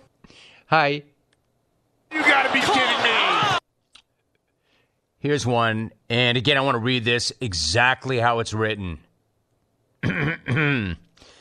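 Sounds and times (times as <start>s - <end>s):
speech: 0.7s - 1.1s, 2.4s - 3.2s, 5.2s - 9.0s
person clearing throat: 10.0s - 11.1s.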